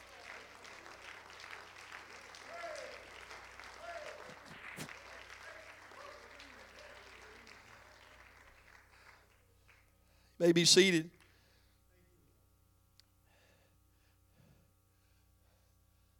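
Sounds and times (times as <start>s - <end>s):
congregation clapping hands: 0.0s - 11.3s
speech: 10.4s - 11.2s.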